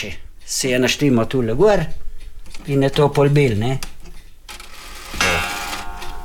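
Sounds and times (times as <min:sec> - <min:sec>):
speech: 0:00.0 - 0:02.0, 0:02.6 - 0:03.9
old parish-house clock striking a chime: 0:04.5 - 0:06.2.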